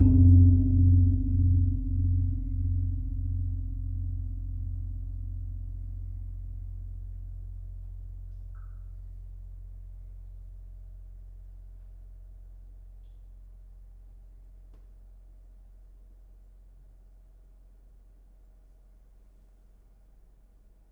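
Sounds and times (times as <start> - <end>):
gong ageng of a gamelan: 0.0 - 8.8.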